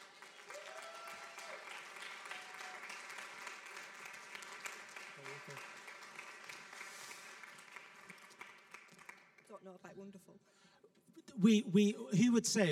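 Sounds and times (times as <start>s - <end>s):
people cheering: 0.0s - 7.0s
church audience applauding: 0.0s - 9.5s
speech: 5.2s - 5.8s, 9.5s - 10.7s, 11.3s - 12.6s.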